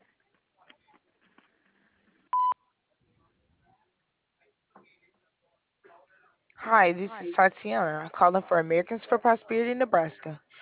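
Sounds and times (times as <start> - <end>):
faint noise: 0.0 - 10.5
answering machine beep: 2.4 - 2.6
speech: 6.7 - 10.4.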